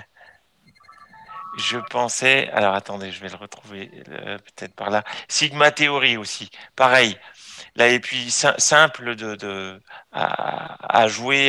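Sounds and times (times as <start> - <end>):
electronic phone ringtone: 0.7 - 2.1
speech: 1.6 - 11.4.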